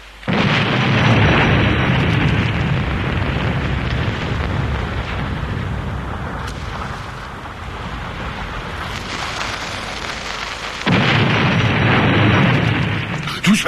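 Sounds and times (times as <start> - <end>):
gunpowder explosion blast: 0.0 - 13.6.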